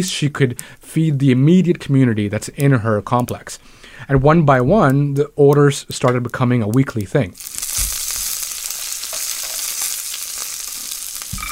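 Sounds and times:
speech: 0.0 - 7.9
food sizzling in a hot pan in an apartment home kitchen: 7.4 - 11.5.

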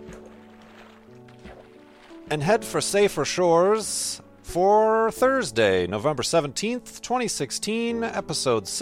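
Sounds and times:
rowboat paddling through water: 0.0 - 5.5
speech: 2.3 - 8.7.

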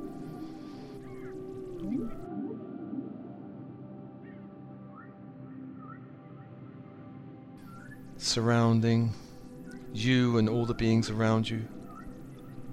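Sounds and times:
steady deep underwater hum: 0.0 - 3.3, 7.6 - 12.7
whale song with low moans and whistling swoops: 0.0 - 6.6, 7.6 - 12.7
speech: 8.2 - 9.2, 10.0 - 11.8.

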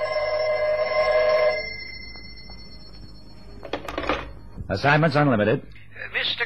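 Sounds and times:
telephone bell ringing: 0.0 - 4.6
speech: 4.7 - 6.4.

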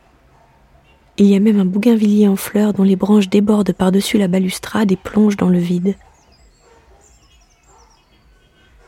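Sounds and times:
dogs barking: 0.0 - 1.5, 5.0 - 8.8
steady low city rumble: 0.0 - 8.8
many birds chirping and twittering overhead: 0.2 - 8.8
speech: 1.2 - 6.1.

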